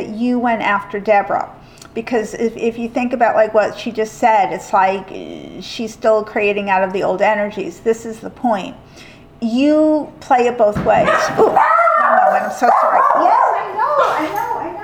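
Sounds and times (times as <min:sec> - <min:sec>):
speech: 0:00.0 - 0:13.3
dog barking at a delivered package: 0:11.0 - 0:14.5.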